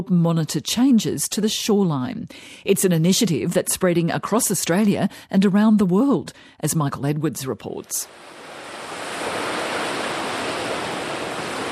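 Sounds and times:
speech: 0.0 - 8.4
gentle waves rolling in at a beach: 8.1 - 11.7.

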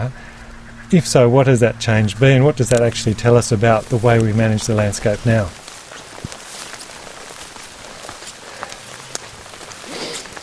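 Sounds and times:
steady rain pattering outdoors on a hillside: 0.0 - 10.4
speech: 0.9 - 5.6
sharper raindrops tapping surfaces: 1.8 - 10.4.

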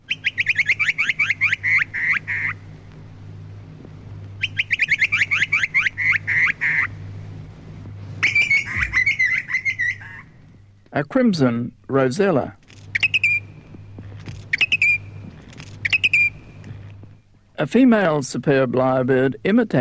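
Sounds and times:
grey butcherbird call: 0.0 - 2.7, 4.4 - 7.0, 8.2 - 10.4, 12.9 - 13.7, 14.4 - 16.8
steady low hum: 0.0 - 19.7
speech: 11.0 - 12.6, 17.6 - 19.7.

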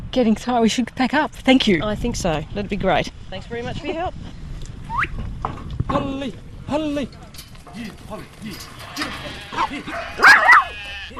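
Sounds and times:
faint farm yard noise: 0.0 - 11.1
speech: 0.1 - 4.4, 5.9 - 10.5
sheep bleating in sheepyards of a sheep and cattle farm at Kalangadoo, South Australia: 8.4 - 11.1.

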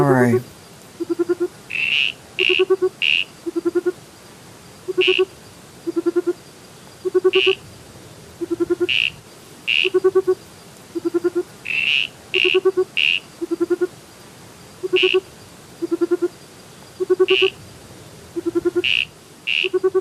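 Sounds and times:
giant burrowing frog soft owl-like triple-note call: 0.0 - 4.0, 4.8 - 6.4, 7.0 - 7.6, 8.4 - 14.0, 14.8 - 16.4, 17.0 - 17.6, 18.3 - 20.0
speech: 0.1 - 0.6.

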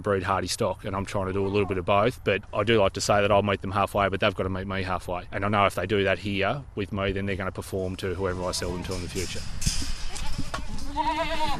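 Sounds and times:
speech: 0.0 - 9.8
faint outdoor rustle and shuffling: 0.0 - 11.5
Boer goat bleating at a breeding property in northwest Tasmania: 10.1 - 11.5.

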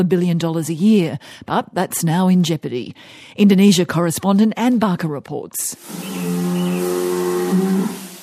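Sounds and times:
speech: 0.0 - 6.4, 7.5 - 8.0
cattle imported from Australia mooing in an Indonesian feedlot: 5.9 - 8.1.

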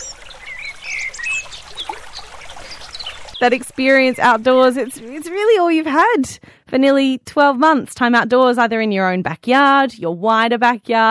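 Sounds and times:
bird singing in a tree: 0.0 - 5.4
speech: 3.4 - 11.0.

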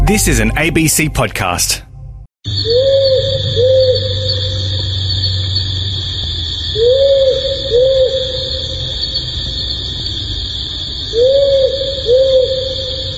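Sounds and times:
speech: 0.1 - 1.9
powerful owl hooting in low double hoots: 2.5 - 5.3, 6.7 - 9.6, 10.9 - 13.1
steady high insect drone: 2.5 - 13.1.

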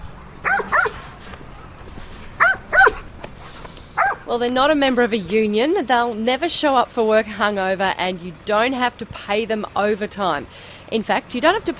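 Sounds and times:
working farm dog barking: 0.4 - 1.0, 2.4 - 3.1, 4.0 - 4.3
speech: 4.3 - 11.7.

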